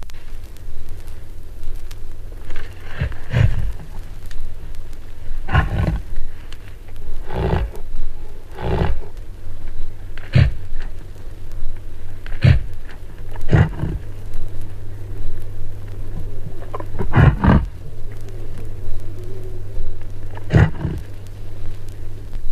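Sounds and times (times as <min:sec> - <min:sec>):
low steady rumble: 0:00.0 - 0:22.5
bull reindeer rutting call: 0:02.6 - 0:04.2, 0:05.4 - 0:06.4, 0:07.1 - 0:09.2, 0:10.1 - 0:11.0, 0:12.1 - 0:22.1.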